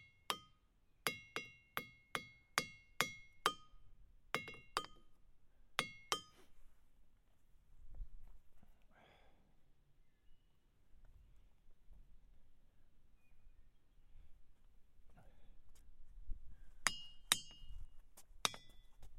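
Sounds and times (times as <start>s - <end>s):
hammer striking ringing rocks: 0.0s - 5.2s, 5.8s - 6.4s, 16.8s - 17.8s, 18.4s - 18.8s.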